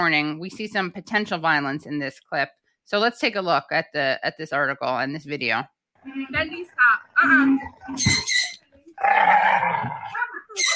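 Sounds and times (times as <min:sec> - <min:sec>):
speech: 0:00.0 - 0:10.7
English bulldog growling: 0:09.0 - 0:10.3.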